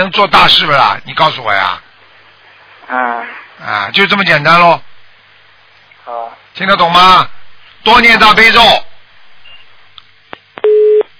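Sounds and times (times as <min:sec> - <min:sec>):
speech: 0:00.0 - 0:01.9, 0:02.9 - 0:04.9, 0:06.1 - 0:08.9
telephone busy tone after a dropped call: 0:10.6 - 0:11.0
constant hiss on the telephone line: 0:10.6 - 0:11.1.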